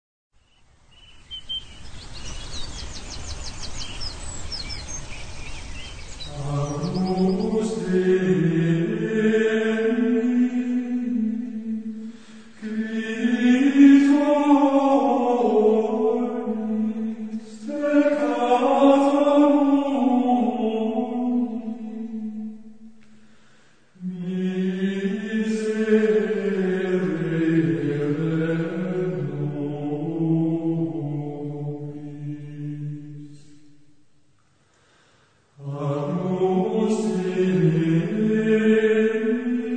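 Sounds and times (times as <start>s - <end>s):
Gregorian chant: 5.8s - 23.2s, 24.0s - 33.9s, 35.6s - 39.7s.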